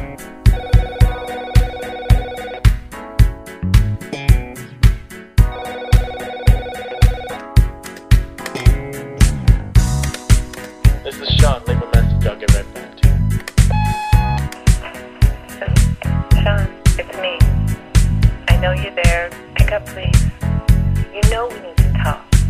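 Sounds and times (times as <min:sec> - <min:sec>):
beat-driven song with pulsing drums and bass: 0:00.0 - 0:22.4
telephone ringing in short bursts: 0:00.5 - 0:02.7, 0:05.4 - 0:07.5, 0:13.7 - 0:14.5.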